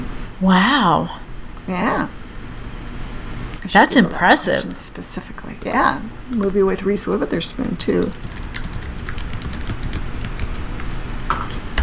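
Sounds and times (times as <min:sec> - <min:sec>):
speech: 0:00.4 - 0:02.2, 0:03.7 - 0:08.4
typing on a computer keyboard: 0:06.3 - 0:11.8.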